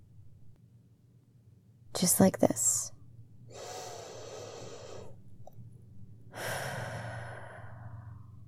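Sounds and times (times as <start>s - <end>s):
speech: 2.0s - 3.0s
deep breath in through the nose and out through the mouth: 3.5s - 5.4s, 6.3s - 8.4s.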